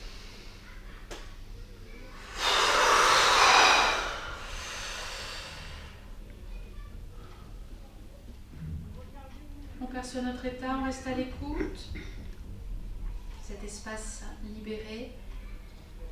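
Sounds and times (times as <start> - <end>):
breathing in and out during a guided relaxation exercise: 0.0 - 0.9, 2.0 - 6.3
speech: 10.1 - 12.2, 13.6 - 15.2.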